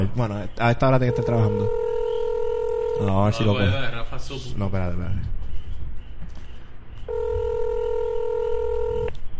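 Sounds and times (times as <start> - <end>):
speech: 0.0 - 1.8, 3.0 - 5.4
phone call electronic ring tone: 1.0 - 3.4, 7.1 - 9.2.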